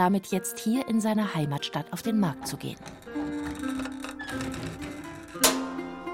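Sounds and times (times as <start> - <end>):
speech: 0.0 - 3.7
sustained droning music: 0.0 - 6.1
mechanical printing press clacking and ticking: 2.4 - 6.1.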